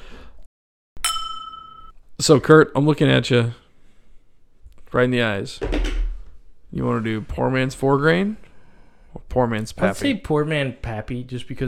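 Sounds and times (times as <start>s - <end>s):
glasses clinking in a toast: 1.0s - 1.9s
low room noise: 1.0s - 11.6s
speech: 2.2s - 3.6s, 4.9s - 5.8s, 6.7s - 8.4s, 9.2s - 11.6s.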